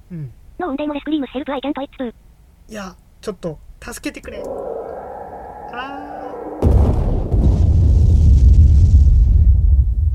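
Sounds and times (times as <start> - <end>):
speech: 0.1 - 4.9
sustained low rumble: 4.2 - 10.1
video game explosion: 4.4 - 9.6.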